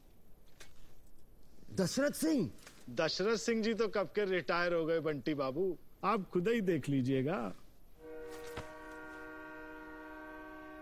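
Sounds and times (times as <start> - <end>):
speech: 1.8 - 7.6
train horn on railway tracks: 8.0 - 10.7.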